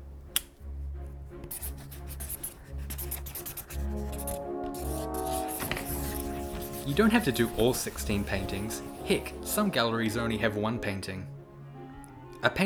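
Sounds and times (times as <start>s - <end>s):
speech: 1.5s - 2.3s, 6.9s - 11.4s, 12.4s - 12.6s
pens and pencils scratching on small cut-out paper rectangles: 1.5s - 9.8s.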